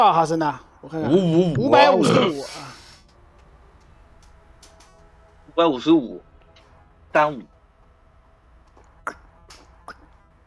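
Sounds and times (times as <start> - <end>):
speech: 0.0 - 2.8, 5.6 - 6.3, 7.1 - 7.5
person burping after drinking bottled glacier water: 1.7 - 2.5.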